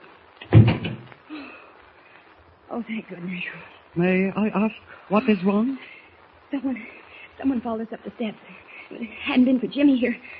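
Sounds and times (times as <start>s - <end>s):
door shutting with a dull thud: 0.4s - 1.1s
speech: 2.7s - 5.9s, 6.5s - 10.3s.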